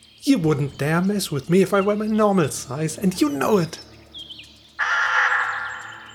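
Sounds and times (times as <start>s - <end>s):
faint chirps: 0.0s - 6.1s
speech: 0.2s - 3.9s
crow screeching caw: 4.8s - 6.1s.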